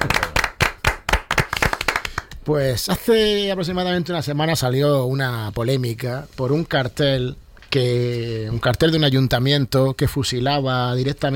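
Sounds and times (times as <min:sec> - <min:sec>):
handclaps greeting an author: 0:00.0 - 0:02.4
speech: 0:02.4 - 0:11.3.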